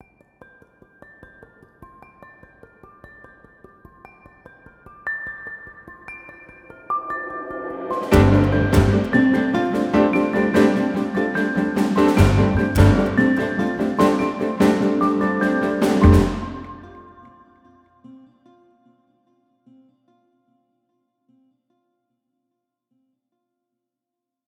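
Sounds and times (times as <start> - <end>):
highkey beat loop in G minor: 8.1 - 17.0.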